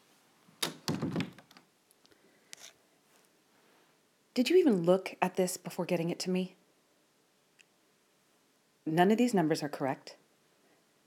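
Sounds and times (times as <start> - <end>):
door swinging shut with a solid thunk: 0.6 - 1.6
speech: 4.4 - 6.6, 8.9 - 10.2.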